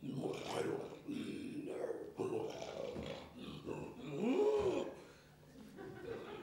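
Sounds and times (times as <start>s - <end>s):
person imitating a lion roar: 0.0s - 5.0s
person chuckling: 5.6s - 6.4s.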